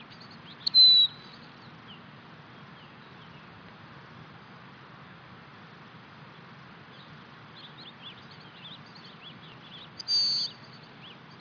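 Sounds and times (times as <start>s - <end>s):
faint low background hiss: 0.0s - 11.3s
bird giving a high steady whistled note: 0.6s - 1.4s, 10.0s - 10.6s.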